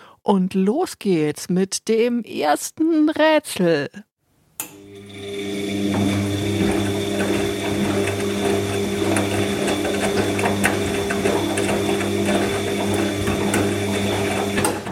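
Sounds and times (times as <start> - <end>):
speech: 0.2 - 4.1
washing machine running: 4.7 - 14.8.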